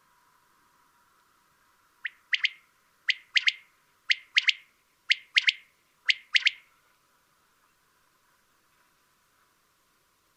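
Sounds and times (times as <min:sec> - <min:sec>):
Common quail three-note call: 0:02.0 - 0:06.7.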